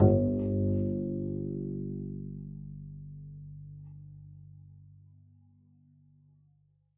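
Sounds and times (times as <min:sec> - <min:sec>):
double bass pizzicato G1 note: 0:00.0 - 0:03.3.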